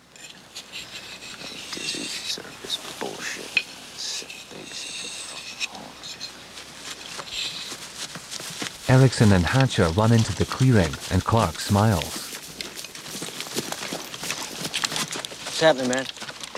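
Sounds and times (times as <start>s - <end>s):
knife sharpened on a spit-wetted whetstone at a hut: 0.2s - 2.8s, 3.6s - 5.8s
speech: 8.9s - 12.2s, 15.6s - 16.2s.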